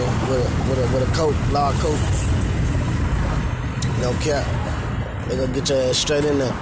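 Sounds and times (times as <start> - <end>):
street traffic rumbling at a city bus stop at Lamar and Bellevue: 0.0 - 6.6
speech: 0.3 - 2.4, 4.0 - 6.6.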